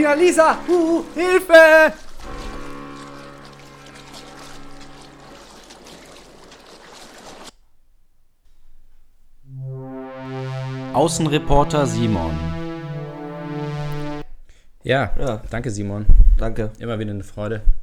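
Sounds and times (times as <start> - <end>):
speech: 0.0 - 2.0, 10.9 - 12.6, 14.8 - 17.8
boat moving through the Mediterranean Sea near an island: 2.2 - 7.5
loud sustained tonal sound: 9.5 - 14.2.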